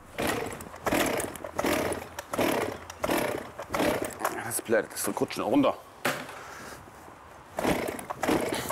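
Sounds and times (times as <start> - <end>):
small two-stroke engine pull-started: 0.1 - 4.5, 7.6 - 8.7
speech: 4.7 - 5.9.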